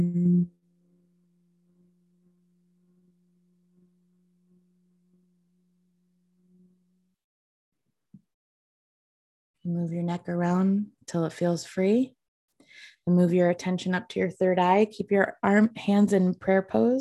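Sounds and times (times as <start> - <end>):
person humming a low pitch on an exhale: 0.0 - 0.6
speech: 9.7 - 12.2, 12.8 - 17.0.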